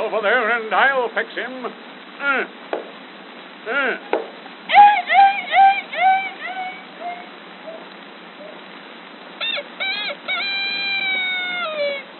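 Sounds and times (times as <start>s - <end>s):
speech: 0.1s - 2.8s, 3.6s - 4.2s
voice imitating chickens and roosters squawking and clucking: 4.7s - 7.3s, 9.4s - 12.1s.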